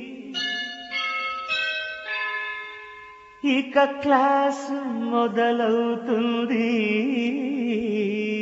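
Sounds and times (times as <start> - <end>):
school bell ringing for the first period of the day: 0.4 - 3.6
speech: 3.6 - 8.2.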